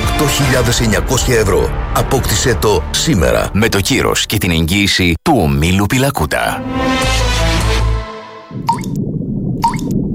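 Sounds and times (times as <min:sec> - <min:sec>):
speech: 0:00.2 - 0:07.3
water dripping from a tap: 0:08.6 - 0:09.0, 0:09.6 - 0:10.0.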